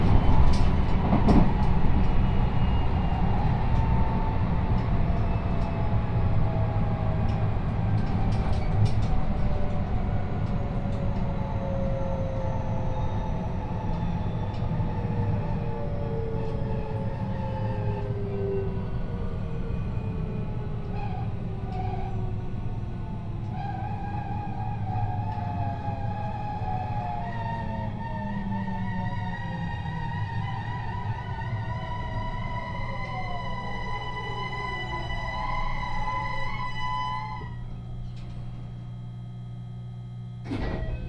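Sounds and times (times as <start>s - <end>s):
steady low rumble of a train rolling along the line: 0.0s - 41.0s.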